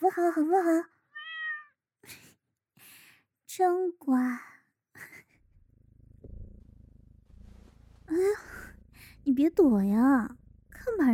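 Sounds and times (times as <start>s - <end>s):
speech: 0.0s - 1.0s, 3.5s - 4.5s, 8.1s - 8.6s, 9.2s - 11.1s
cat meowing: 1.1s - 1.8s.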